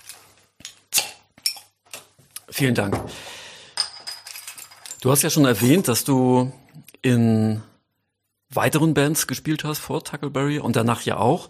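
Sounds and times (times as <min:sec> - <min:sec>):
glass bottle of malt beer being handled and opened: 0:01.4 - 0:01.8, 0:03.8 - 0:05.7
speech: 0:02.6 - 0:03.4, 0:05.0 - 0:07.7, 0:08.5 - 0:11.4.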